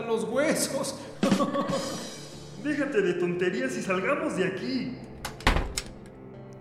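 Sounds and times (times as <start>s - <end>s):
speech: 0.1s - 5.1s
laughter: 1.2s - 2.2s
door shutting with heavy booming thud: 5.2s - 6.1s.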